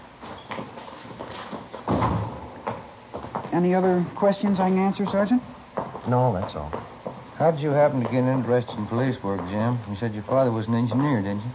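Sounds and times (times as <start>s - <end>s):
low indoor hum: 0.0s - 11.5s
door thump: 1.9s - 2.8s
speech: 3.6s - 11.5s.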